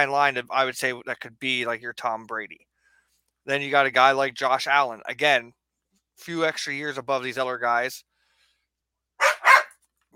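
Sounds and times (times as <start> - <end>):
speech: 0.0 - 2.7, 3.4 - 5.6, 6.2 - 8.1
dog barking: 9.2 - 9.8.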